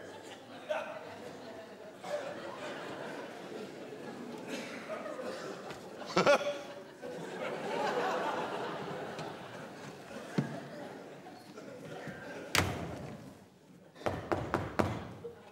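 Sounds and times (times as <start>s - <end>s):
laughter: 0.0s - 13.2s
faint murmur of voices: 0.0s - 14.4s
knocking on a door: 14.1s - 15.2s.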